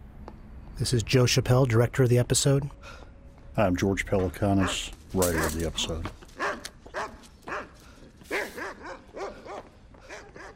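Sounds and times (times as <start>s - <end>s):
speech: 0.8s - 3.0s, 3.6s - 6.2s
shepherd dog barking: 4.6s - 5.6s, 6.4s - 10.5s.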